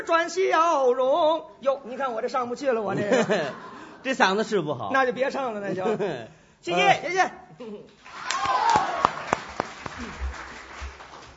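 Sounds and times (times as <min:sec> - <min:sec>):
speech: 0:00.0 - 0:09.0
laughter: 0:02.9 - 0:04.3, 0:05.6 - 0:06.3
audience applause: 0:08.0 - 0:11.3.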